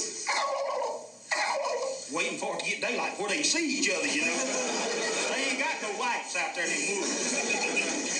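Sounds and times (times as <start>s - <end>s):
voice imitating an old wild turkey gobbler gobbling: 0.3s - 2.0s
speech: 2.1s - 8.1s
laughter: 3.8s - 6.0s, 6.6s - 8.1s.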